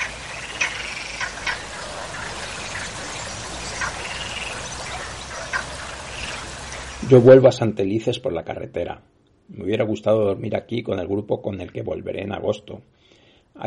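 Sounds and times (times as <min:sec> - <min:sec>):
frogs croaking at tunnel mouth: 0:00.0 - 0:07.6
steady hiss of running water: 0:00.0 - 0:07.9
speech: 0:07.1 - 0:13.0.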